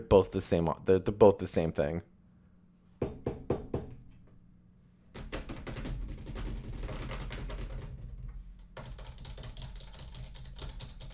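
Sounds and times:
speech: 0:00.0 - 0:02.1
stockbroker typing and clicking on a computer keyboard: 0:05.2 - 0:11.1.

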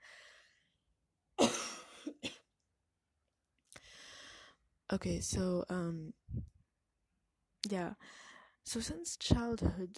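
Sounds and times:
loud cough burst and hacking coughs: 0:01.4 - 0:02.5
speech: 0:04.9 - 0:06.5, 0:07.7 - 0:09.9.

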